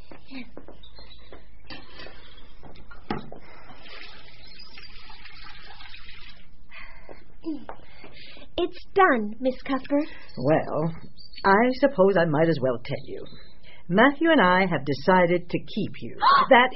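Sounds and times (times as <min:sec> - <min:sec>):
hot water running and sloshing in a basin: 0:03.4 - 0:06.6
speech: 0:08.7 - 0:16.7.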